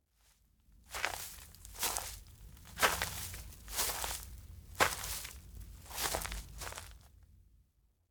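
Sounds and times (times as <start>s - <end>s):
footsteps walking on outdoor grassland: 0.9s - 7.0s.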